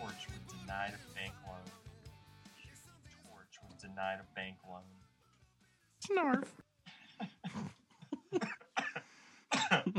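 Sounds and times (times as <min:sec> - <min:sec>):
speech: 0:00.8 - 0:01.4, 0:04.0 - 0:05.1, 0:06.0 - 0:06.7
person coughing harshly: 0:07.4 - 0:09.9.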